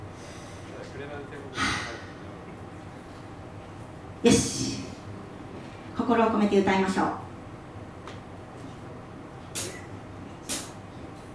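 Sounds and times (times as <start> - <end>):
low steady hum: 0.0 - 11.3
singer taking a deep breath at a live concert: 0.1 - 0.8
speech: 4.2 - 4.9, 6.1 - 7.2.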